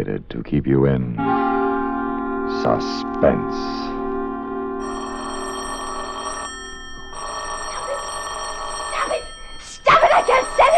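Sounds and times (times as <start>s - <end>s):
speech: 0.0s - 1.4s, 2.5s - 4.0s
telephone bell ringing with a bright metallic trill: 4.8s - 10.7s.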